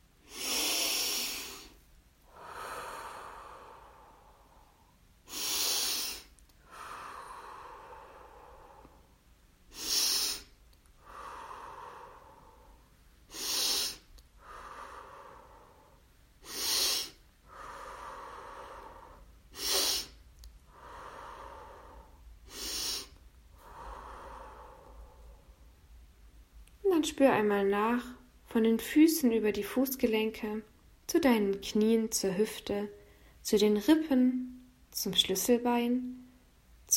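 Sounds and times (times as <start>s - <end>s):
slow deep breathing in and out through the nose in a guided meditation: 0.2s - 25.8s
speech: 27.0s - 34.4s, 35.0s - 36.2s.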